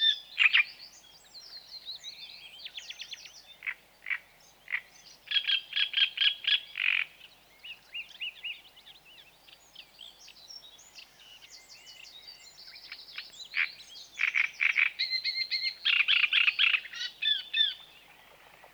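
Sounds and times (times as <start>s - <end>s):
great reed warbler song: 0.0s - 18.7s.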